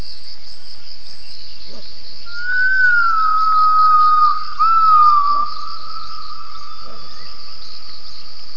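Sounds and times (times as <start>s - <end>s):
high insect drone: 0.0s - 8.5s
gibbon whistled call: 2.3s - 5.7s.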